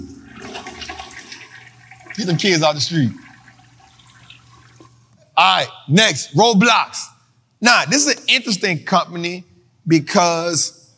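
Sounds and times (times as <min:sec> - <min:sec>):
toilet flushing: 0:00.0 - 0:05.1
speech: 0:02.2 - 0:03.2, 0:05.5 - 0:10.8.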